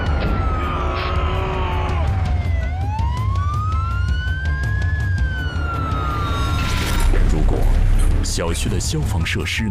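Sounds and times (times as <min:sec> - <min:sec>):
fire truck siren wailing: 0:00.0 - 0:07.2
speech: 0:08.4 - 0:09.7.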